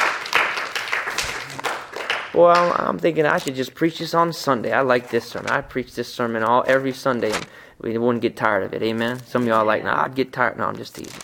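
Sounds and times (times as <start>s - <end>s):
audience clapping: 0.0s - 2.9s
speech: 2.3s - 11.2s.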